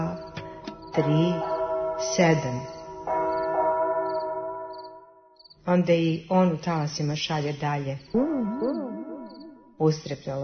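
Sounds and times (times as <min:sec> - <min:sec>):
church bell ringing from a bell tower in the morning: 0:00.9 - 0:05.1
speech: 0:01.0 - 0:02.8, 0:05.6 - 0:08.8, 0:09.8 - 0:10.4.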